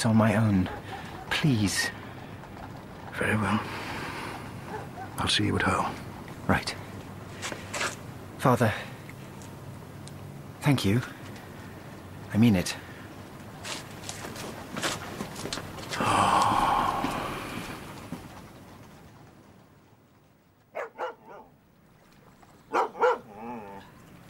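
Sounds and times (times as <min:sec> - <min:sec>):
speech: 0:00.0 - 0:02.0, 0:03.2 - 0:03.8, 0:05.2 - 0:06.8, 0:08.4 - 0:08.9, 0:10.6 - 0:11.2, 0:12.3 - 0:12.8
rustling and shuffling noise: 0:00.0 - 0:10.0, 0:13.0 - 0:20.7
dog barking at night: 0:00.6 - 0:01.3, 0:04.7 - 0:05.2, 0:20.7 - 0:21.5, 0:22.7 - 0:23.8
dog whining yelp: 0:20.8 - 0:21.5, 0:22.7 - 0:23.8.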